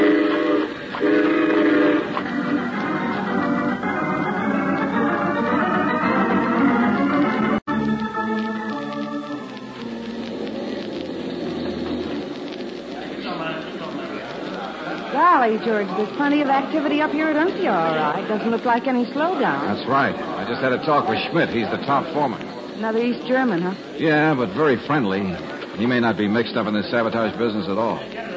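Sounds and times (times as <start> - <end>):
sustained horn-like tones: 0.0 - 6.4
train running on rails: 0.0 - 28.0
speech: 15.6 - 28.2.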